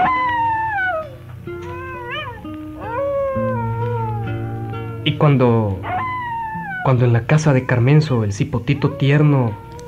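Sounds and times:
coyote howling: 0.0 - 9.8
low steady drone: 3.2 - 7.3
speech: 5.0 - 5.9, 6.8 - 9.6.

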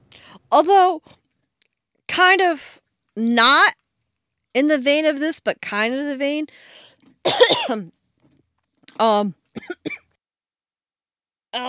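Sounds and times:
speech: 0.5 - 1.2, 2.2 - 3.8, 4.5 - 8.0, 9.0 - 10.0
person with a summer cough coughing: 7.3 - 7.8, 9.6 - 10.1.

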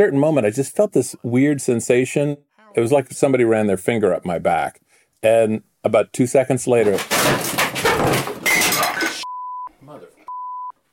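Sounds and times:
speech: 0.0 - 8.3
old chair collapsing with a clattering crash: 6.8 - 9.2.

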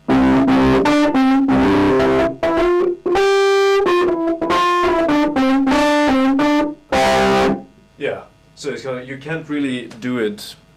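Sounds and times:
gritty distorted analog Fender Rhodes electric keyboard played in a recording session: 0.0 - 7.8
speech: 8.6 - 10.6.

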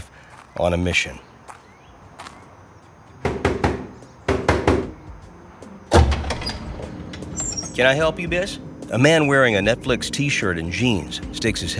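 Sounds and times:
speech: 0.6 - 1.3, 7.8 - 11.7
woman knocking on the steel door of a DVD warehouse: 3.2 - 5.0.

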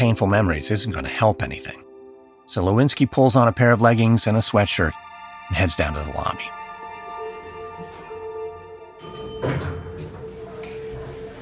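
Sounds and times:
speech: 0.0 - 1.8, 2.5 - 6.6
elevator doors sliding open: 9.0 - 11.4.

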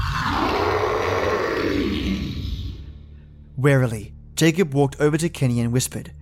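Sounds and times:
harsh gravelly monster scream from the woods: 0.0 - 3.0
speech: 3.6 - 6.2.

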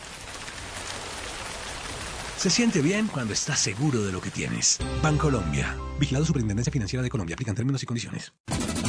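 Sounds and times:
rain pattering against a window: 0.0 - 4.8
speech: 2.4 - 8.7.

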